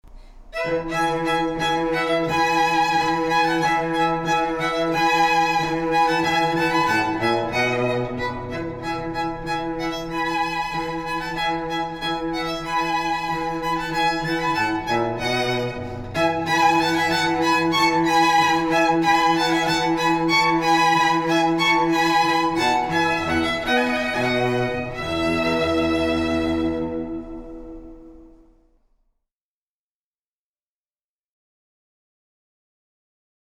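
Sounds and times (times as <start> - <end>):
string trio playing wedding ceremony music: 0.5 - 28.6.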